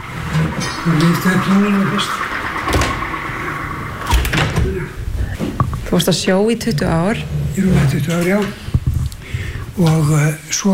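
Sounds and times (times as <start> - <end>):
steady hum: 0.0 - 10.7
speech: 0.8 - 2.3, 4.8 - 8.6, 9.8 - 10.7
door pulled shut during repair work: 2.6 - 3.2, 4.0 - 4.9.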